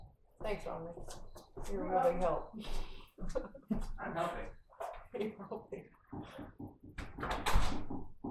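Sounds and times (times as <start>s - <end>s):
speech: 0.5s - 8.1s
door pushed shut: 7.0s - 8.2s.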